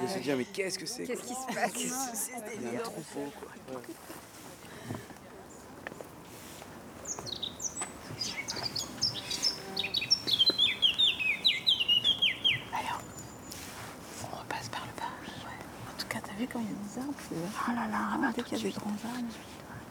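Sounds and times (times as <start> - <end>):
speech: 0.1 - 4.4, 16.6 - 19.6
bird chirping bright descending notes: 7.0 - 13.7.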